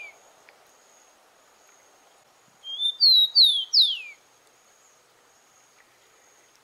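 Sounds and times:
rufous-collared sparrow Zonotrichia capensis singing: 2.6s - 4.2s.

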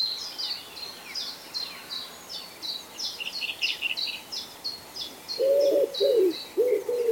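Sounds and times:
small birds high thin chirps: 0.0s - 7.1s
common wood pigeon cooing: 5.4s - 7.1s.

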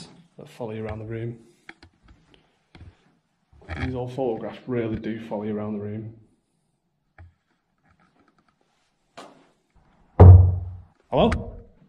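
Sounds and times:
speech: 0.4s - 1.5s, 3.8s - 6.2s, 11.1s - 11.5s
sharp knocks in a quiet room: 10.2s - 10.8s.

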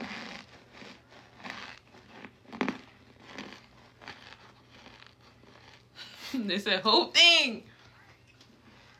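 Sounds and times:
man biting and chewing crispy food: 0.0s - 6.3s
speech: 6.4s - 7.7s.

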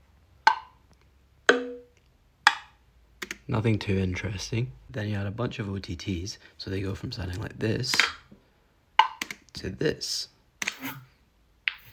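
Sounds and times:
short percussion samples: 1.5s - 2.7s
speech: 3.5s - 8.2s, 9.6s - 11.1s.

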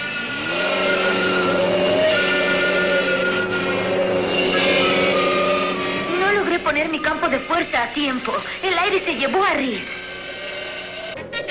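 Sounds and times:
cartoon powerful aircraft engine roaring: 0.0s - 11.4s
speech: 7.3s - 10.0s.

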